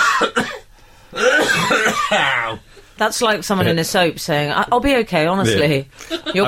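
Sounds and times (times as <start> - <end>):
harsh raspy coughs: 0.0 - 2.6
speech: 0.2 - 0.6, 2.1 - 6.4.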